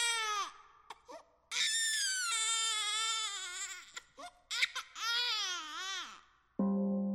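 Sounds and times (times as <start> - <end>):
baby wailing: 0.0 - 6.3.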